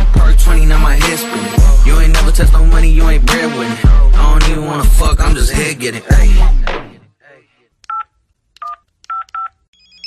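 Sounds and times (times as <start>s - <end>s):
speech: 0.5s - 6.8s
telephone keypad dual-tone beeps: 7.9s - 10.0s.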